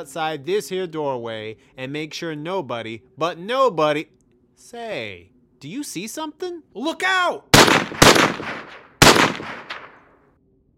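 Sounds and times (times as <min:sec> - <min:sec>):
speech: 0:00.0 - 0:08.8
gunshots: 0:07.6 - 0:10.2.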